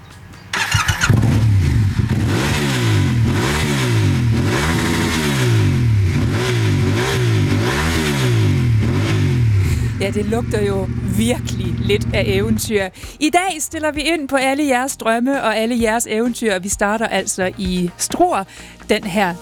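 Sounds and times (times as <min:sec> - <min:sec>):
Yamaha motorcycle engine cranking and revving: 0:00.5 - 0:12.9
speech: 0:10.1 - 0:19.4.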